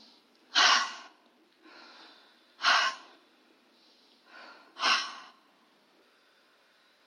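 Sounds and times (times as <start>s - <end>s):
deep breaths nose in mouth out: 0.0s - 7.0s.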